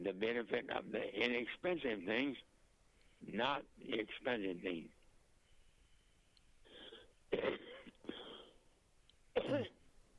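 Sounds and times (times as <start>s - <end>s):
speech: 0.0s - 2.5s, 3.2s - 5.0s, 9.4s - 9.8s
90-year-old man coughing harshly and wheezily: 7.3s - 8.6s, 9.4s - 9.8s.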